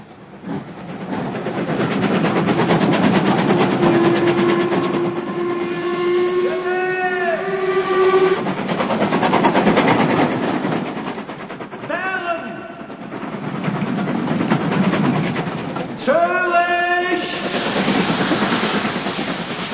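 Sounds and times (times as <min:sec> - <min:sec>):
train bound for Dover rumbling along: 0:00.0 - 0:19.7
train whistle blasts: 0:03.9 - 0:08.5.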